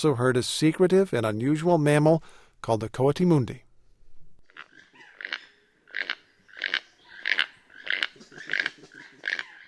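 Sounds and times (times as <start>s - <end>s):
speech: 0.0s - 3.6s
keel-billed toucans croaking in Guatemalan rainforest: 4.4s - 9.6s.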